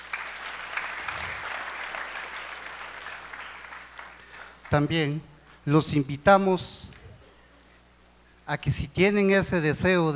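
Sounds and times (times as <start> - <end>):
crowd applauding: 0.0 - 4.8
speech: 4.7 - 6.9, 8.5 - 10.1.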